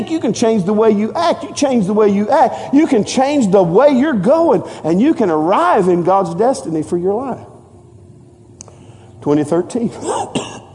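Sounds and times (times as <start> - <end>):
speech: 0.0 - 7.5, 9.2 - 10.7
person clearing throat: 10.0 - 10.7
person coughing: 10.0 - 10.7.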